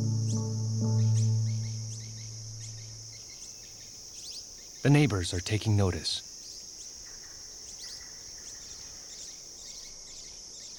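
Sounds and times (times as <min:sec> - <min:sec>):
steady thin whine: 0:00.0 - 0:03.1
low buzzing hum: 0:00.0 - 0:03.2
hummingbird chirping song: 0:00.0 - 0:03.3
speech: 0:04.8 - 0:06.3.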